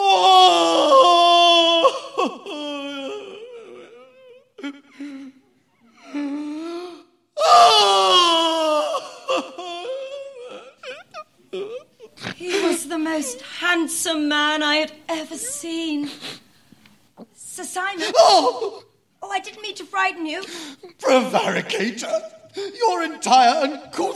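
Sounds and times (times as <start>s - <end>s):
man sobbing in a room under the eaves of a castle: 0.0s - 13.4s, 18.0s - 19.0s, 20.6s - 23.9s
speech: 14.1s - 16.4s, 17.8s - 18.8s, 19.4s - 24.1s.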